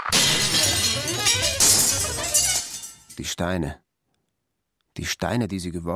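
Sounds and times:
crackle of tinkling glass pieces: 0:00.1 - 0:03.3
glass shards clattering down: 0:00.1 - 0:03.3
window shattering: 0:00.1 - 0:03.3
speech: 0:03.3 - 0:03.8, 0:05.1 - 0:05.9.

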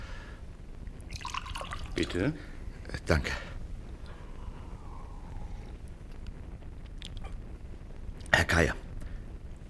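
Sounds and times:
low hiss: 0:00.0 - 0:09.6
water pouring into a glass: 0:01.1 - 0:02.2
speech: 0:02.0 - 0:03.5, 0:08.5 - 0:08.8.

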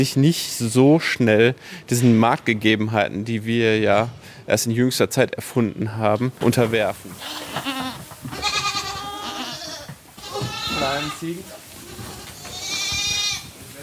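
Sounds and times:
speech: 0:00.0 - 0:08.5, 0:10.8 - 0:11.6
goats bleating in a stable: 0:07.1 - 0:13.6.

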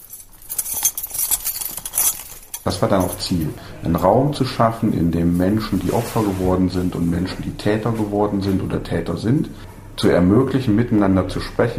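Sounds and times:
keys jangling while unlocking a hall door: 0:00.0 - 0:03.5
speech: 0:02.7 - 0:11.7.

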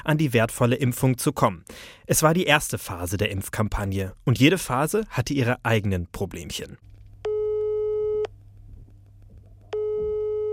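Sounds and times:
speech: 0:00.0 - 0:06.9
low hum: 0:00.0 - 0:10.5
telephone busy signal on a vaccination appointment hotline in Hessen Germany: 0:07.3 - 0:08.3, 0:09.8 - 0:10.5.

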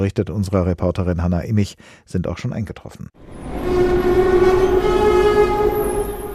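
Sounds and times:
speech: 0:00.0 - 0:04.7
train tonal whine pulling into a station: 0:03.2 - 0:06.3.

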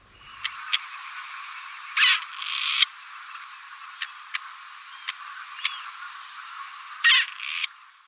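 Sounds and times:
grey partridge calling: 0:01.8 - 0:07.8.

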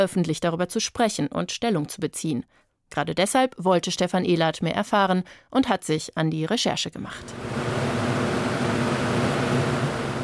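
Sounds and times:
speech: 0:00.0 - 0:07.8
large industrial fans of an air capture plant whirring: 0:07.2 - 0:10.2.

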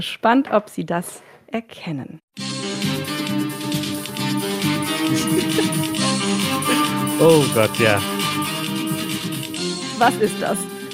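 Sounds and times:
speech: 0:00.0 - 0:02.8, 0:07.2 - 0:08.2, 0:10.0 - 0:10.7
1980s TV crime show theme music with sustained chords: 0:02.4 - 0:10.9
laughter: 0:04.9 - 0:08.0, 0:08.7 - 0:09.4
voice exclaiming: 0:06.7 - 0:08.1.

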